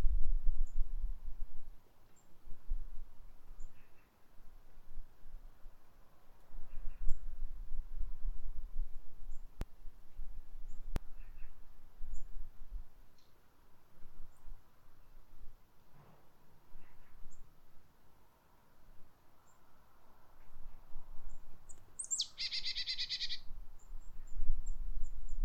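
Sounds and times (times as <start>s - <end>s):
faint background noise: 0.0s - 25.4s
marsh tit calling: 22.0s - 23.4s.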